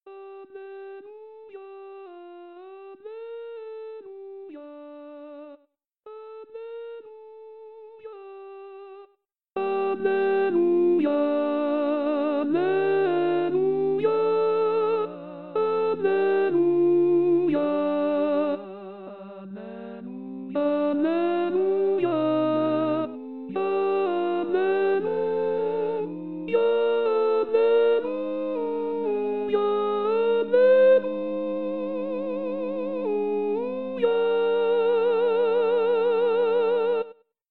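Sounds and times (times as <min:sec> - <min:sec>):
contraltos singing: 0:09.7 - 0:37.1.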